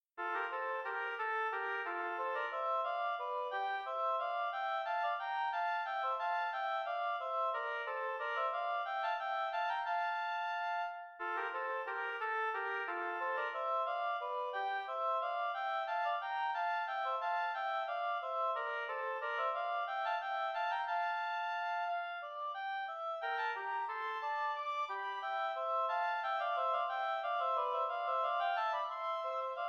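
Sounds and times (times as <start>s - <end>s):
two oboes playing an air en rondeau: 0.1s - 29.6s.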